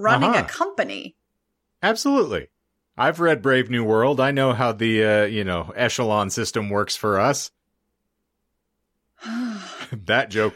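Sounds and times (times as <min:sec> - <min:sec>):
speech: 0:00.0 - 0:01.2, 0:01.8 - 0:07.6, 0:09.2 - 0:10.5
person yawning: 0:09.2 - 0:10.0.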